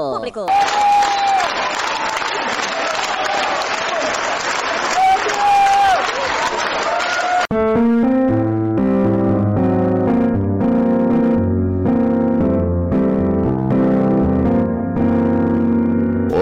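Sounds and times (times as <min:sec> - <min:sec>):
speech: 0:00.0 - 0:01.1
large audience applauding: 0:00.5 - 0:07.5
people cheering: 0:00.5 - 0:07.5
music: 0:07.5 - 0:16.4.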